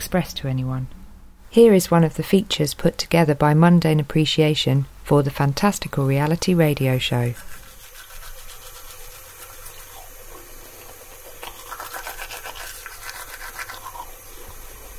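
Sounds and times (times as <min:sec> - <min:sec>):
speech: 0:00.1 - 0:07.6
toothbrush scrubbing teeth: 0:07.2 - 0:14.9.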